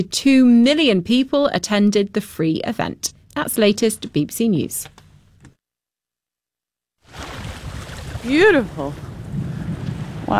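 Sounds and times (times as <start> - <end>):
speech: 0.0 - 4.9, 8.2 - 9.1
Baltic Sea waves washing onto a beach: 7.1 - 10.3.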